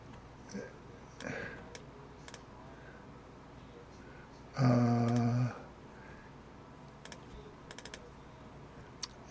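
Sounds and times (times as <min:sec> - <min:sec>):
speech: 0:00.5 - 0:01.5
typing on a computer keyboard: 0:07.0 - 0:08.0.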